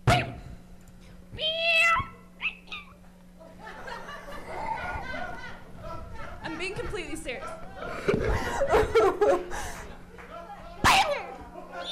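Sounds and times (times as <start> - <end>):
human voice imitating a cat meowing: 1.4 - 2.9
laughter: 3.4 - 11.9.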